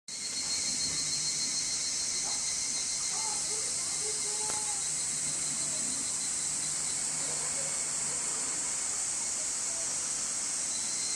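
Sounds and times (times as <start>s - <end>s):
faint lower chirps: 0.1s - 8.4s, 10.6s - 11.1s
evening cicada droning on a high shrill note: 0.1s - 11.1s.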